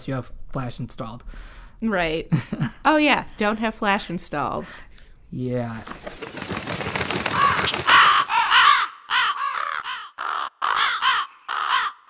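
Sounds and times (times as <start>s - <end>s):
speech: 0.0s - 6.2s
rustling: 5.6s - 8.5s
crows cawing: 6.8s - 12.0s.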